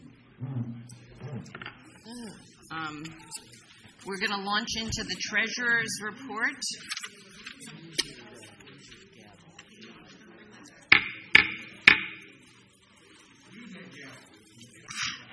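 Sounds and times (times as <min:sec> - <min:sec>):
faint murmur: 0:00.0 - 0:15.3
speech: 0:01.4 - 0:07.0
hammer used as a gavel knocking at a board meeting: 0:10.9 - 0:12.2.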